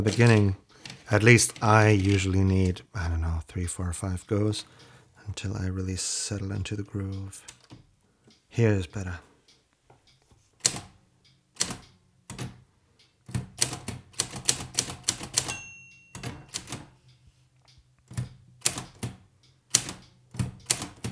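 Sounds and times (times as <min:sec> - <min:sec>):
typing on a manual typewriter: 0:00.0 - 0:02.3, 0:10.6 - 0:11.0, 0:11.6 - 0:12.6, 0:13.2 - 0:17.0, 0:18.1 - 0:21.0
speech: 0:00.0 - 0:07.6, 0:08.5 - 0:09.3
faint metallic ring of a manual typewriter: 0:15.5 - 0:16.2.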